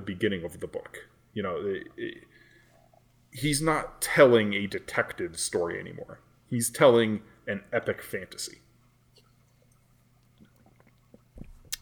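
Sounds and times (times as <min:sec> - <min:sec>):
speech: 0:00.0 - 0:02.3, 0:03.3 - 0:08.7
person sipping coffee: 0:09.1 - 0:11.7
person swallowing: 0:10.3 - 0:11.7.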